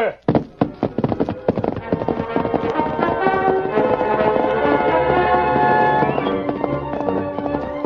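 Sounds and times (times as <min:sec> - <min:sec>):
speech: 0:00.0 - 0:00.3
horse hooves galloping: 0:00.0 - 0:07.8
loud orchestral music: 0:01.8 - 0:07.8.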